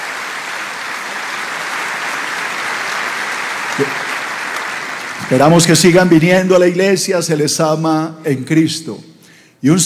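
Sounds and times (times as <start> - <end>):
audience applauding in welcome: 0.0 - 6.3
speech: 3.8 - 4.1, 5.3 - 9.8.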